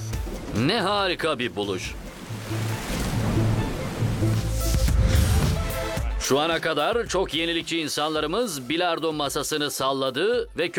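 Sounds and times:
rushing water churning into surf waves: 0.0s - 6.1s
speech: 0.6s - 3.0s, 6.2s - 10.7s.

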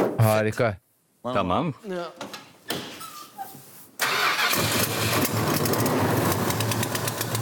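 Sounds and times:
speech: 0.2s - 2.3s
V8 car engine with a suspected broken gasket or cracked manifold starting: 4.0s - 7.3s.

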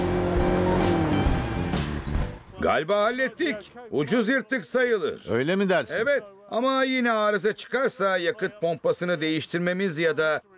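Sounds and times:
car engine running after fuel hoses were reconnected: 0.0s - 2.4s
speech: 2.6s - 10.5s.

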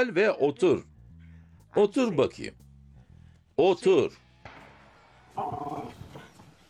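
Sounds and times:
speech: 0.0s - 0.9s, 1.7s - 2.6s, 3.6s - 4.2s, 5.4s - 6.0s
dog growling: 5.4s - 6.3s.

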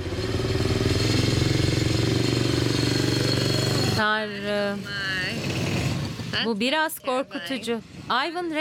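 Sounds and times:
go-kart engine built for a small child chugging: 0.0s - 6.5s
speech: 4.1s - 5.1s, 6.4s - 8.5s.

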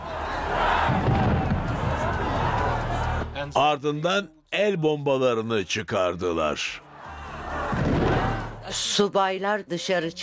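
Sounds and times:
large crowd of protesters shouting together in a town square: 0.0s - 3.4s, 6.8s - 8.7s
speech: 3.5s - 6.8s, 8.7s - 10.2s.

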